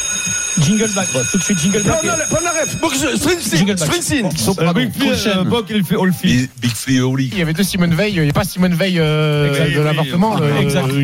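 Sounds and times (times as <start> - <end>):
bell ringing with a high-pitched metallic tone: 0.0 - 4.6
speech: 0.6 - 11.0
people talking loudly: 0.8 - 11.0.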